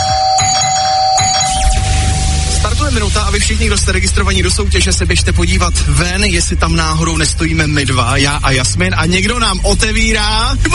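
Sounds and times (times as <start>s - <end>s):
doorbell ringing at a house door: 0.0s - 2.8s
low rumbling noise: 0.0s - 10.7s
speech: 3.3s - 10.7s.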